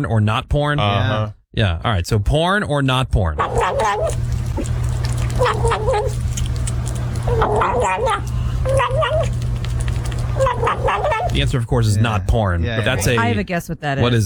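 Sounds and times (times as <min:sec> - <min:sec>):
speech: 0:00.0 - 0:04.7, 0:05.4 - 0:06.5, 0:07.3 - 0:09.4, 0:10.4 - 0:14.2
kitten gobbling its food noisily: 0:03.4 - 0:11.7, 0:12.8 - 0:13.4
steady low hum: 0:03.4 - 0:14.2.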